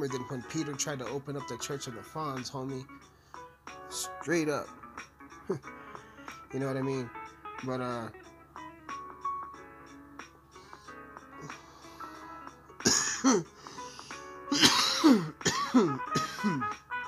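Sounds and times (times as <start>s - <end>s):
speech: 0.0s - 3.2s, 3.9s - 5.8s, 6.5s - 8.3s, 13.2s - 13.6s, 15.1s - 16.8s
person with a cold clearing throat: 12.8s - 13.5s, 14.5s - 16.8s
person with a cold coughing: 12.8s - 13.5s, 14.5s - 16.8s.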